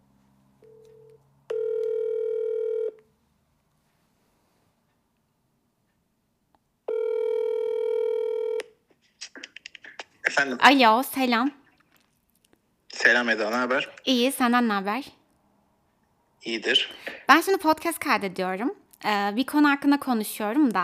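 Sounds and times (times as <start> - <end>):
brief low telephone beep: 0.6 - 3.0, 6.9 - 8.6
speech: 10.4 - 11.6, 13.1 - 15.2, 16.4 - 20.8.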